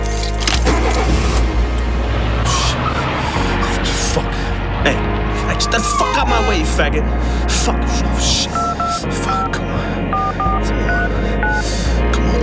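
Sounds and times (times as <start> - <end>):
car engine roaring: 0.1 - 12.4
tyres squealing and skidding: 5.5 - 6.8
speech: 6.8 - 8.5.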